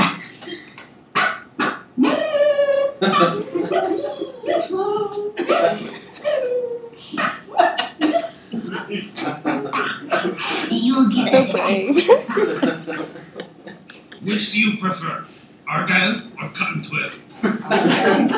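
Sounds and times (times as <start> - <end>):
person imitating a terrier-beagle dog barking: 1.2 - 7.8
laughter: 2.0 - 14.5, 17.3 - 18.3
speech: 3.0 - 4.1, 8.7 - 13.2, 14.3 - 18.3.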